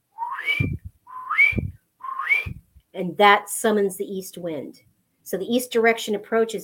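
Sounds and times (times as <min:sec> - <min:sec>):
person whistling rising notes from low to high: 0:00.1 - 0:02.6
speech: 0:03.0 - 0:06.6.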